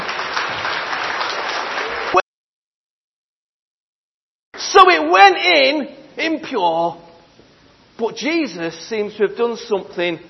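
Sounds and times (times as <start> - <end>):
audience applause: 0.0 - 2.2
speech: 4.8 - 7.0, 8.0 - 10.2.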